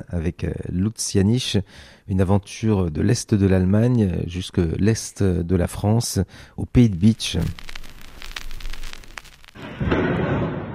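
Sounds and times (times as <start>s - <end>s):
speech: 0.0s - 7.7s
scattered crackling bursts: 6.6s - 10.6s
explosions from targeted strikes: 9.6s - 10.7s.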